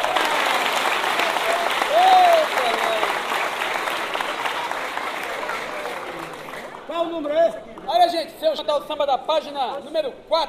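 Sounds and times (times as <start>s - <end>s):
audience applause: 0.0s - 6.9s
speech: 8.6s - 10.4s.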